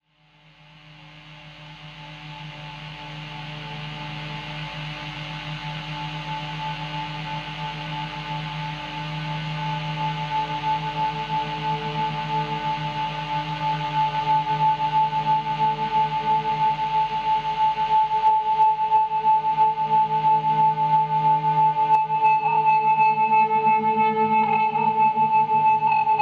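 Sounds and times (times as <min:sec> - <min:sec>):
guitar pendulum: 0:00.6 - 0:26.1.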